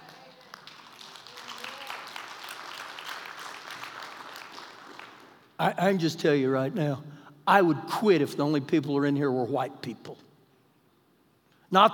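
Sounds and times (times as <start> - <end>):
crowd applauding: 0.0 - 5.5
speech: 5.6 - 10.3, 11.7 - 11.9.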